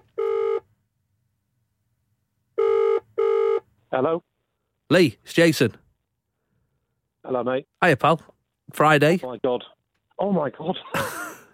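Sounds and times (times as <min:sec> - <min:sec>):
outgoing-call ringback tone through a phone line: 0:00.2 - 0:00.6, 0:02.6 - 0:03.6
speech: 0:03.9 - 0:04.3, 0:04.9 - 0:05.8, 0:07.3 - 0:11.3.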